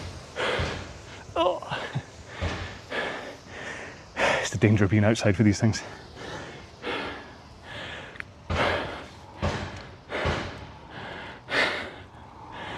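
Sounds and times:
hammer blows of a neighbour hammering out a dent in his garage: 0.0s - 1.3s, 8.4s - 10.9s
faint hiss: 0.0s - 12.7s
speech: 1.4s - 1.8s, 4.5s - 6.1s.

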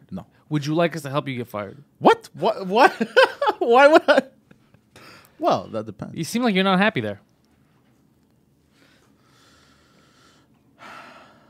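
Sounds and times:
speech: 0.1s - 4.3s, 5.4s - 7.3s
breathy exhales and inhales against a microphone: 4.9s - 5.4s, 8.7s - 11.4s.

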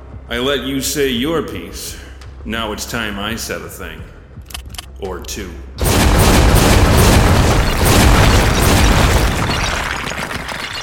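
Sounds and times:
speech: 0.3s - 4.2s, 5.0s - 5.9s
loud explosion of a mechanical machine blowing apart: 5.8s - 10.8s.

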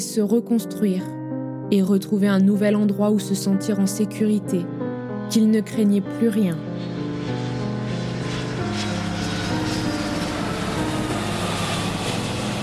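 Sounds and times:
speech: 0.0s - 7.0s
propeller airplane engine droning in flight: 6.6s - 12.6s.

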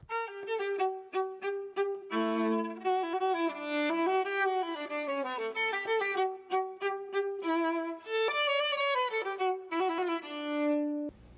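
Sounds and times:
solo viola playing a slow bowed melody: 0.0s - 11.1s.

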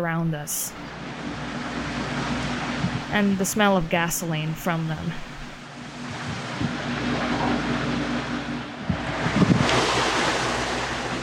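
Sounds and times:
speech: 0.0s - 1.1s, 3.1s - 5.3s
wind blowing against a window: 2.2s - 3.2s, 5.9s - 11.1s.

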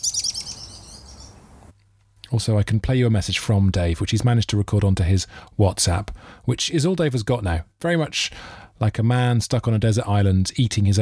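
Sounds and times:
bird chirping sound effect: 0.0s - 1.7s
speech: 2.3s - 11.0s.

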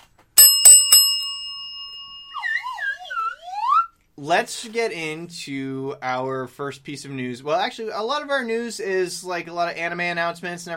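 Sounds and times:
news bell dinging: 0.4s - 2.8s
warbling chirpy whistle-like tones: 2.3s - 4.0s
speech: 4.2s - 10.7s.

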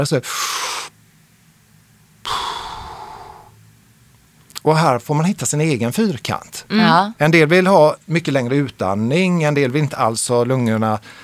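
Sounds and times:
speech: 0.0s - 0.9s, 4.6s - 11.2s
deep breathing exercise: 0.3s - 0.9s, 2.2s - 3.6s, 11.0s - 11.2s.

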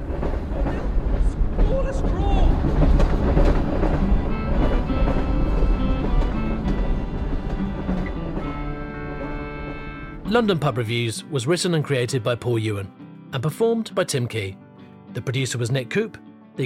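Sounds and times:
noisy train passing over a bridge: 0.0s - 11.0s
speech: 10.3s - 16.6s.

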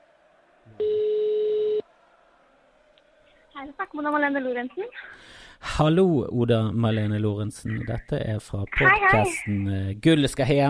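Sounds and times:
telephone ringback tone while calling: 0.8s - 1.8s
speech: 3.6s - 10.6s.

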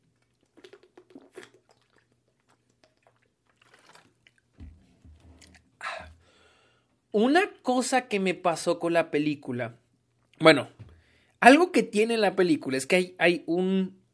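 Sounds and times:
person drinking water with sips, mouth clicks and swallows: 0.0s - 6.3s
speech: 7.1s - 9.8s, 10.4s - 10.8s, 11.4s - 14.0s.

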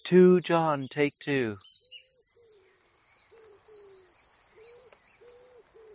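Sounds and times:
faint high-pitched birdsong: 0.0s - 5.9s
speech: 0.1s - 1.7s
wood pigeon cooing: 4.6s - 5.9s.

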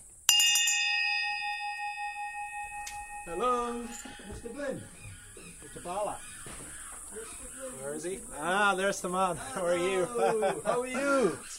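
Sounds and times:
hand bell ringing: 0.3s - 4.4s
speech: 3.3s - 11.5s
laughter: 9.0s - 11.5s.

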